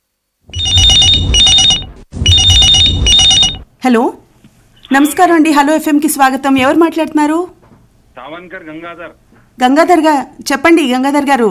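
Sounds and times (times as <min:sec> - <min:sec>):
telephone ringing for an incoming call: 0:00.6 - 0:03.7
speech: 0:03.8 - 0:04.2, 0:04.9 - 0:07.6, 0:08.2 - 0:11.4.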